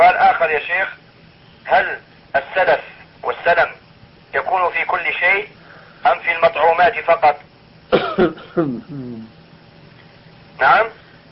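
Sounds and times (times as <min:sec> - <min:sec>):
speech: 0:00.6 - 0:01.0, 0:01.7 - 0:02.0, 0:02.6 - 0:03.8, 0:04.5 - 0:09.4, 0:10.6 - 0:11.0
person coughing: 0:07.9 - 0:09.2
brief voiced throat sound: 0:08.1 - 0:09.3.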